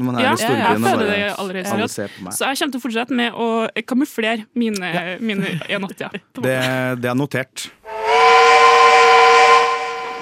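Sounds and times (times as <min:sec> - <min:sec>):
speech: 0:00.0 - 0:08.4
laughter: 0:00.2 - 0:01.4, 0:05.2 - 0:07.0
steam train whistle blast with steam hiss: 0:07.9 - 0:10.2.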